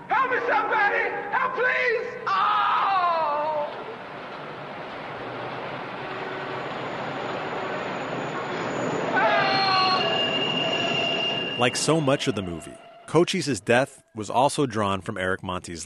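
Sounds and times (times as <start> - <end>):
elevated train rumbling overhead on the L tracks: 0.6 - 13.4
elevated train metal wheels squealing: 3.7 - 13.2
speech: 11.6 - 15.8.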